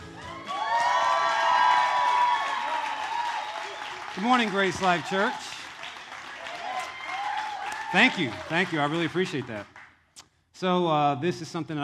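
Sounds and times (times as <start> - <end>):
many voices whooping and shouting together: 0.0 - 8.7
church audience cheering and clapping in support of young men: 0.0 - 9.9
speech: 4.2 - 5.6, 7.9 - 9.7, 10.6 - 11.8.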